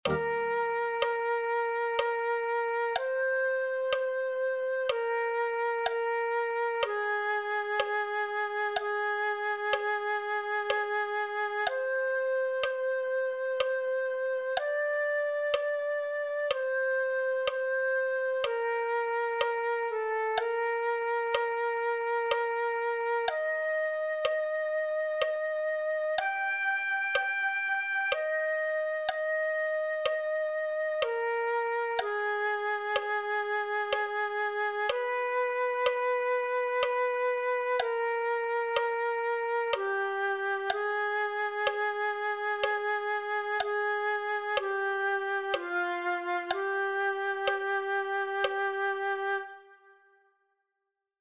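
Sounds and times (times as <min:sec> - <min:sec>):
flute: 0:00.0 - 0:50.5.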